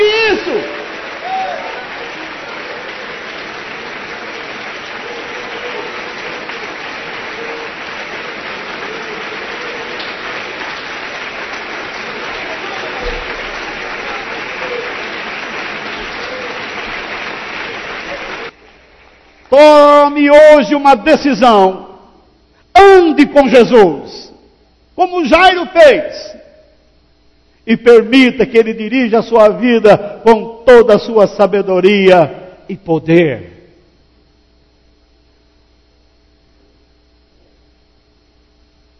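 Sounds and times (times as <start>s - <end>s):
large crowd applauding: 0.0s - 20.1s
speech: 19.6s - 21.8s, 22.8s - 24.2s, 25.0s - 26.3s, 27.7s - 33.5s.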